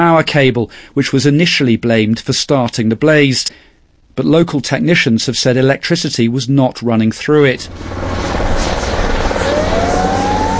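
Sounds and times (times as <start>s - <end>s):
speech: 0.0s - 8.4s
helicopter dropping water on a wildfire in Andalusia Spain: 7.4s - 10.5s
thin helicopter whine rising in pitch: 7.6s - 10.5s.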